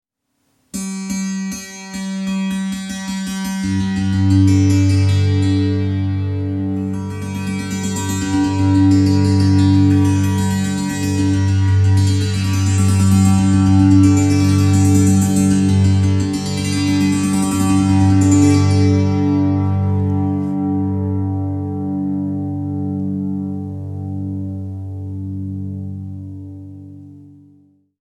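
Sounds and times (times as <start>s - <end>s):
music piece in G: 0.8s - 27.9s.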